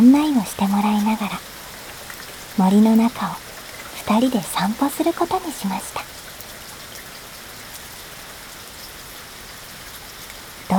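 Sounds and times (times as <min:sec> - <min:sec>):
rain falling: 0:00.0 - 0:10.7
speech: 0:00.1 - 0:01.6, 0:02.6 - 0:03.4, 0:04.0 - 0:06.1.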